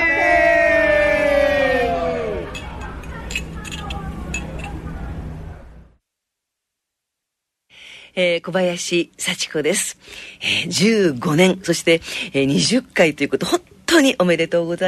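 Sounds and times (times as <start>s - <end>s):
loud drawn-out group call: 0.0s - 5.8s
crowd murmur: 1.0s - 6.0s
glasses clinking together in a toast: 2.5s - 4.8s
speech: 8.2s - 14.8s.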